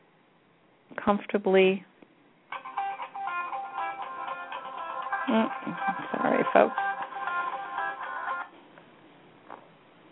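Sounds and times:
speech: 1.0s - 1.9s, 5.3s - 6.9s
mobile phone ringing with a bright melodic electronic tune: 2.5s - 8.5s.

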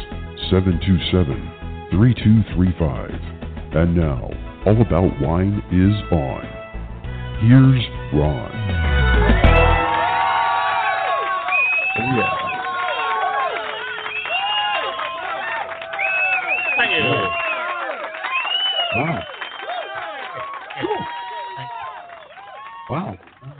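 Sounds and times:
speech: 0.5s - 6.6s, 7.4s - 8.8s
large crowd cheering and shouting: 8.8s - 23.2s.

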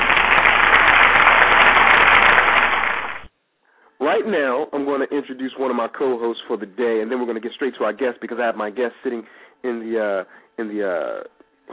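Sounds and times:
audience soul clap: 0.0s - 3.3s
speech: 4.1s - 11.7s.

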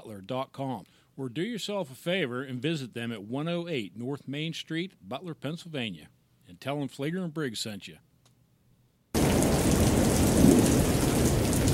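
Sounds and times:
speech: 0.2s - 8.1s
heavy rain pouring: 9.2s - 11.7s.

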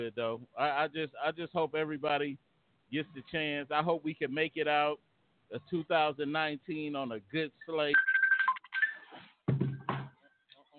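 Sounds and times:
speech: 0.0s - 8.1s
phone electronic tones from an incoming caller: 7.9s - 9.2s.

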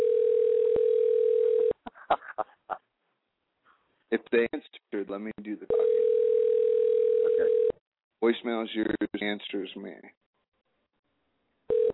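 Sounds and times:
telephone dial tone while redialing a call: 0.0s - 1.8s, 5.8s - 7.7s, 11.7s - 11.9s
speech: 4.1s - 6.2s, 7.4s - 10.2s.

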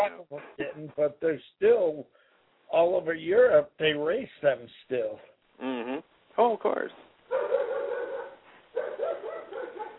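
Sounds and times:
speech: 0.1s - 7.6s
dog barking: 7.3s - 9.9s.

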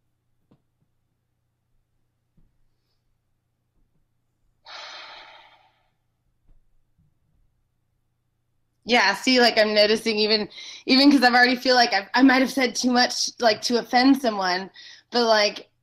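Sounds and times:
deep breath: 4.6s - 6.1s, 14.8s - 15.1s
speech: 8.9s - 15.7s.

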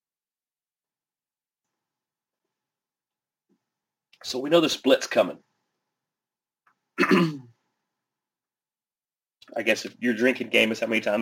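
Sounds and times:
speech: 4.2s - 5.5s, 7.0s - 7.4s, 9.5s - 11.2s
throat clearing: 7.0s - 7.6s.

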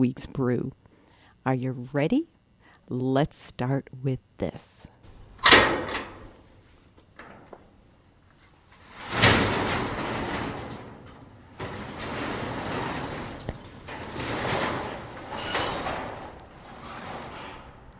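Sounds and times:
speech: 0.0s - 0.8s, 1.4s - 5.0s
manual doors rattling open with thin high squeaks: 5.4s - 6.2s, 8.8s - 17.9s
faint door latch clicks: 5.4s - 6.3s.

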